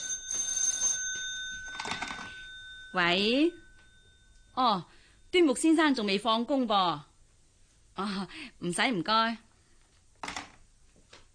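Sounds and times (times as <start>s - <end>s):
telephone ringing with electronic tones: 0.0s - 4.6s
speech: 2.9s - 3.6s, 4.6s - 7.1s, 8.0s - 9.4s.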